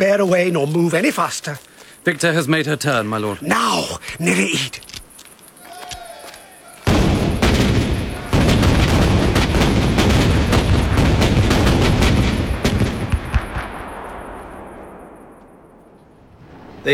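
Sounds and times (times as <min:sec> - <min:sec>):
speech: 0:00.0 - 0:04.9
ship's cannons firing a broadside: 0:06.8 - 0:16.9.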